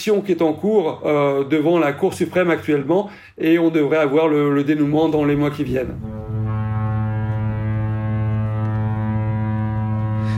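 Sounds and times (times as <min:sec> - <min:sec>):
speech: 0:00.0 - 0:06.2
deep cruise ship horn blast: 0:05.1 - 0:10.3.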